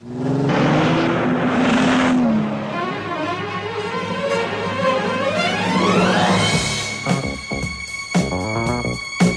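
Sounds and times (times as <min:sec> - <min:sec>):
car engine starting and revving: 0:00.0 - 0:04.4
music: 0:02.6 - 0:09.3.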